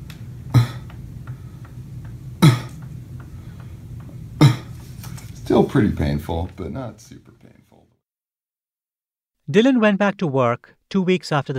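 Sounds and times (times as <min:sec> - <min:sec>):
faint steady ticking: 0:00.0 - 0:04.5
person coughing: 0:00.5 - 0:00.9, 0:02.4 - 0:02.8, 0:04.4 - 0:04.8
speech: 0:05.5 - 0:07.6, 0:09.5 - 0:11.5.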